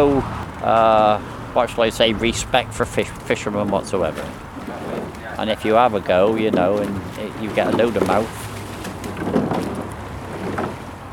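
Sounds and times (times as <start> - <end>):
speech: 0.0 - 4.5, 5.4 - 8.5
outboard motor boat droning across the water: 0.0 - 11.1
water splashing: 0.0 - 11.1
wind: 0.0 - 11.1.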